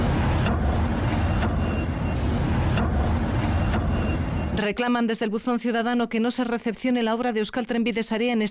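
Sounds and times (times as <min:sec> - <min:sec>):
bus engine and road noise rumbling: 0:00.0 - 0:04.6
speech: 0:04.6 - 0:08.5.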